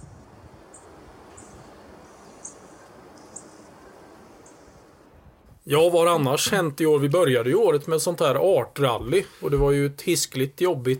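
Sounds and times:
steady rumble of wind: 0.0 - 5.7
little bunting tick calls: 0.7 - 3.7
speech: 5.7 - 10.9.

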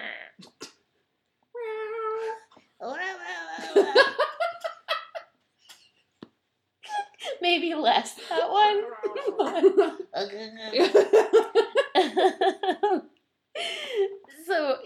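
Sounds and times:
voice imitating a weird cat meow: 1.6 - 3.8
speech: 3.6 - 4.2, 7.5 - 11.6
laughter: 3.6 - 5.3, 8.3 - 10.1, 10.7 - 13.0.

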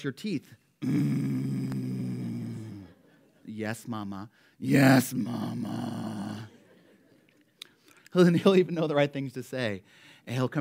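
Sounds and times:
speech: 0.0 - 1.5, 3.5 - 6.5, 8.1 - 10.5
person imitating a young boy's growl: 0.8 - 3.0, 4.6 - 6.5.

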